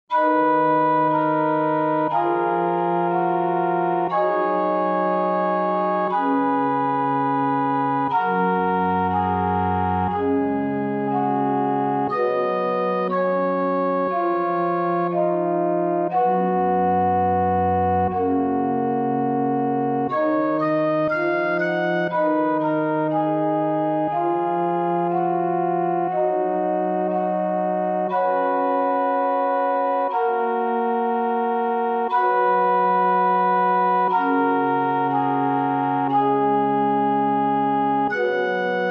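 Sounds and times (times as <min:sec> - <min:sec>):
Maltese church pipe organ ringtone: 0:00.1 - 0:38.8.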